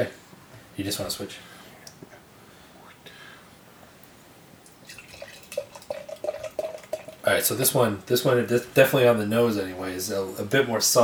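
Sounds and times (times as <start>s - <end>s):
speech: 0.8s - 1.6s, 7.3s - 11.0s
pumpkin spice ale pouring into a glass: 4.6s - 7.7s.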